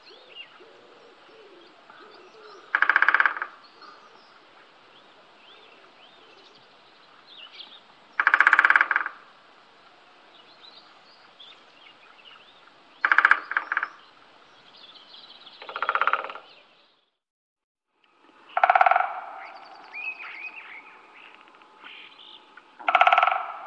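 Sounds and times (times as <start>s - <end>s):
faint background hiss: 0.0s - 17.0s, 18.0s - 23.6s
Great spotted woodpecker drumming: 2.6s - 4.0s, 8.2s - 9.3s, 13.0s - 14.1s, 15.5s - 16.6s, 18.4s - 23.6s.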